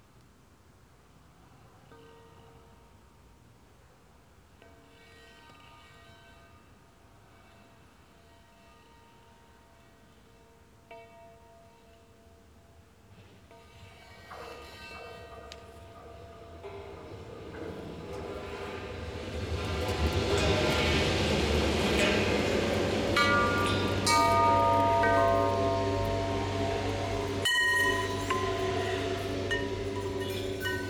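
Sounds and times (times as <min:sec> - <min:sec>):
mechanical time train passing: 0:14.5 - 0:30.8.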